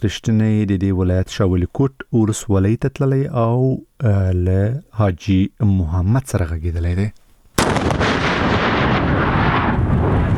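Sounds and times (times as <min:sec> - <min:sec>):
speech: 0:00.0 - 0:07.2
controlled detonation of a discovered landmine by a police engineering team: 0:07.6 - 0:10.3.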